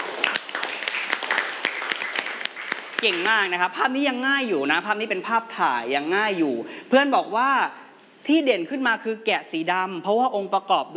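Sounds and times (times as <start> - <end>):
classroom students clapping for a classmate: 0.0 - 3.6
speech: 3.0 - 10.9.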